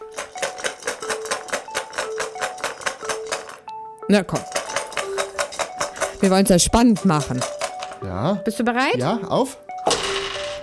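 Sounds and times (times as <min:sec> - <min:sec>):
dice rattling as they are rolled in a dice game: 0:00.0 - 0:03.6, 0:04.4 - 0:08.0, 0:09.8 - 0:10.6
speech: 0:04.1 - 0:04.6, 0:06.2 - 0:10.0.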